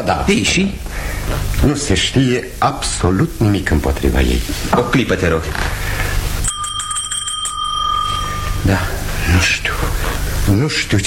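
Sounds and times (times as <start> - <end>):
speech: 0.0 - 5.8, 8.7 - 11.0
hand bell rung to summon a servant: 6.4 - 9.1.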